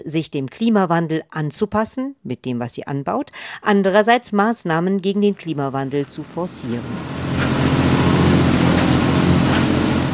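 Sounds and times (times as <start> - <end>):
speech: 0.0 - 7.5
tractor engine droning in a cow barn: 5.9 - 10.1.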